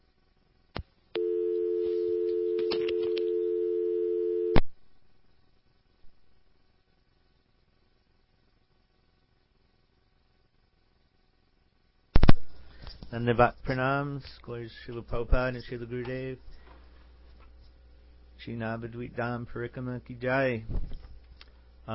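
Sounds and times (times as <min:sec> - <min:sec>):
telephone disconnect tone after a dropped call: 0:01.2 - 0:04.6
speech: 0:13.2 - 0:16.6, 0:18.4 - 0:21.0.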